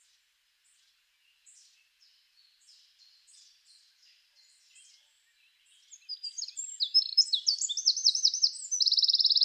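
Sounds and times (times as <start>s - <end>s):
Eurasian wren Troglodytes troglodytes singing: 6.0s - 9.4s.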